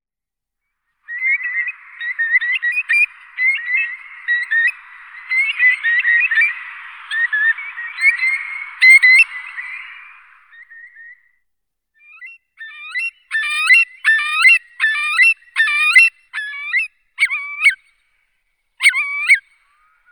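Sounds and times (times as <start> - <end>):
Eurasian curlew Numenius arquata calling: 1.0 - 11.0, 12.1 - 17.8, 18.8 - 20.0.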